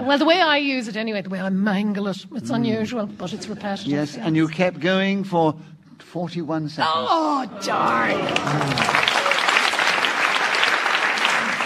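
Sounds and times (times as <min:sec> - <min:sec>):
speech: 0:00.1 - 0:09.3
audience applause for a contestant: 0:07.8 - 0:11.6.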